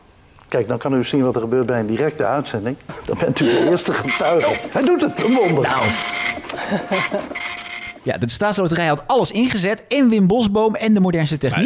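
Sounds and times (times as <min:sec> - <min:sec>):
speech: 0:00.5 - 0:11.6
laughter: 0:02.9 - 0:07.6
printer whirring, chattering and clacking as it feeds and prints: 0:03.2 - 0:08.1.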